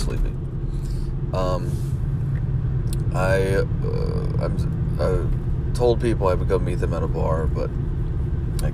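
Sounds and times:
road rumble and engine drone inside a moving car: 0:00.0 - 0:08.7
speech: 0:00.1 - 0:00.4, 0:01.3 - 0:01.9, 0:03.1 - 0:08.0, 0:08.6 - 0:08.7.

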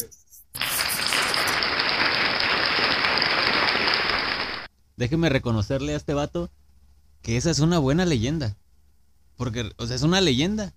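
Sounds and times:
crowd applauding: 0:00.6 - 0:04.7
speech: 0:05.0 - 0:06.6, 0:07.2 - 0:08.6, 0:09.4 - 0:10.7.

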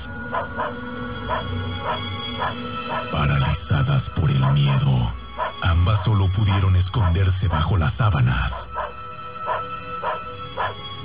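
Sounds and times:
dog barking at night: 0:00.3 - 0:03.6, 0:04.2 - 0:05.7, 0:08.4 - 0:11.0
speech: 0:06.0 - 0:08.6.

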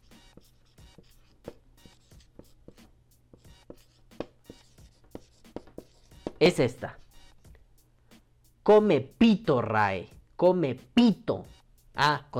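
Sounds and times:
handwriting strokes scratching across paper: 0:00.0 - 0:07.6
speech: 0:06.4 - 0:07.0, 0:08.7 - 0:12.3.

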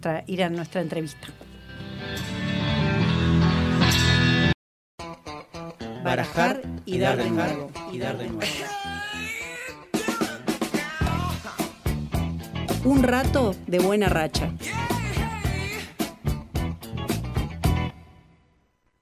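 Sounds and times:
speech: 0:00.0 - 0:01.4, 0:06.1 - 0:09.3, 0:12.8 - 0:14.9
short burst of full loud music: 0:01.8 - 0:04.5, 0:05.9 - 0:18.0.

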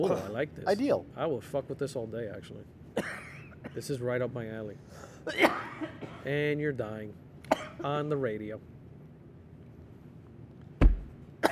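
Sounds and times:
coughing: 0:00.0 - 0:00.4, 0:03.0 - 0:03.8, 0:05.2 - 0:06.3, 0:07.5 - 0:07.8
speech: 0:00.0 - 0:08.7.

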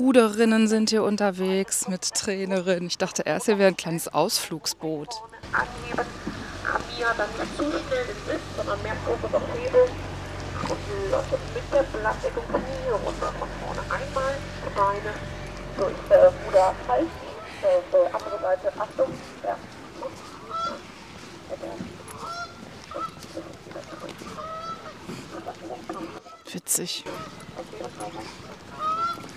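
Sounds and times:
speech: 0:00.0 - 0:20.2, 0:21.5 - 0:22.0, 0:25.5 - 0:29.0
water splashing: 0:05.4 - 0:26.4
geese honking loudly, fighting over nesting sites: 0:05.4 - 0:29.3.

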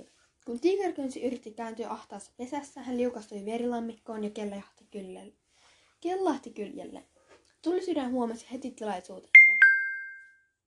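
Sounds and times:
speech: 0:00.5 - 0:05.4, 0:06.0 - 0:09.7
two-note electronic notification chime from a mobile phone: 0:09.4 - 0:10.3.

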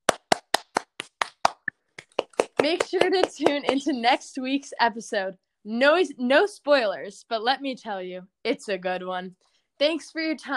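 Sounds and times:
audience applause with hand claps: 0:00.0 - 0:04.0
speech: 0:02.6 - 0:10.5.

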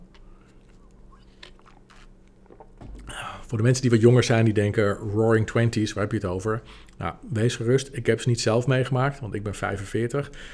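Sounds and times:
person sipping a drink with wet mouth clicks: 0:00.0 - 0:03.5
swallowing: 0:00.1 - 0:03.6
speech: 0:03.5 - 0:10.5.

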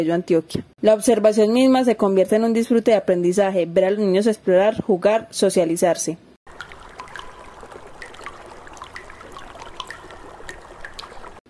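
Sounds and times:
speech: 0:00.0 - 0:06.3
bright droplet patter: 0:06.5 - 0:11.4
water jets of a park fountain rushing: 0:06.5 - 0:11.4.

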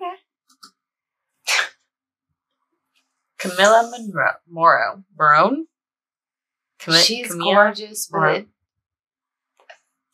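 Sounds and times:
person sneezing: 0:01.5 - 0:01.7
speech: 0:03.4 - 0:05.7, 0:06.8 - 0:08.6.

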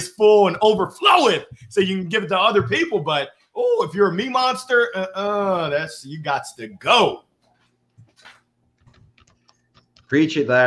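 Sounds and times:
speech: 0:00.0 - 0:07.3, 0:10.1 - 0:10.6
typing on a computer keyboard: 0:08.8 - 0:10.1.

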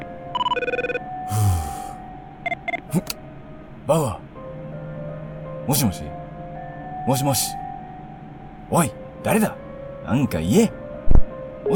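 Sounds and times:
telephone ringing in electronic trilling bursts: 0:00.3 - 0:01.1
breathy exhale-like rush: 0:01.3 - 0:02.0
speech: 0:03.9 - 0:04.2, 0:05.7 - 0:06.2, 0:07.1 - 0:07.6, 0:08.7 - 0:10.8.

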